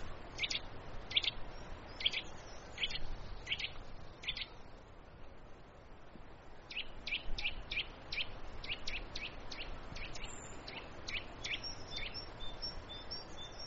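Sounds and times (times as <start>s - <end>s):
soft outdoor hiss: 0.0s - 13.6s
Eurasian nuthatch calling: 0.4s - 1.4s, 6.7s - 13.6s.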